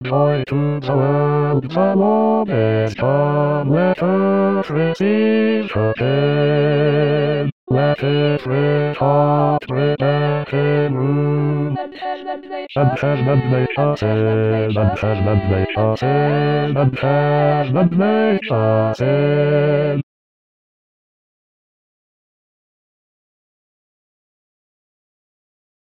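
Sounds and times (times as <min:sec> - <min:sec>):
bass voice singing: 0:00.0 - 0:11.8, 0:12.8 - 0:20.0.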